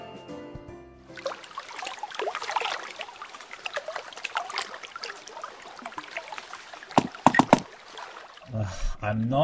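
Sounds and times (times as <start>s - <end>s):
liquid sloshing splashes in a bathtub: 1.1s - 8.6s
warm mulled cider bubbling in a bathtub: 1.1s - 9.0s
speech: 9.0s - 9.4s.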